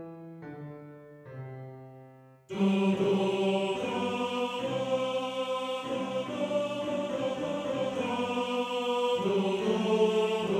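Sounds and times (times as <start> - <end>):
second tenor of a men's choir singing: 2.5 - 10.5.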